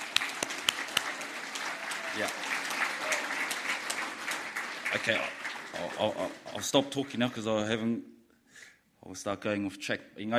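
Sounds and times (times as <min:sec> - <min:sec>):
audience applauding: 0:00.0 - 0:07.5
speech: 0:02.2 - 0:02.4, 0:04.9 - 0:08.1, 0:09.0 - 0:10.3.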